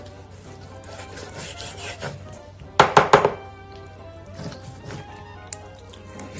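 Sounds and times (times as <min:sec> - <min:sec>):
knife cutting onion, carrot and chicken for a Thai yellow curry: 0:00.9 - 0:03.5, 0:04.3 - 0:05.1.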